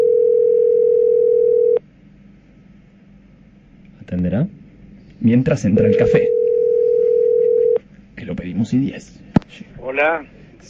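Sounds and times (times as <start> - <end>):
telephone ringing tone while placing a call: 0.0 - 1.8, 5.8 - 7.8
speech: 4.3 - 4.6, 5.2 - 6.4, 8.3 - 10.6.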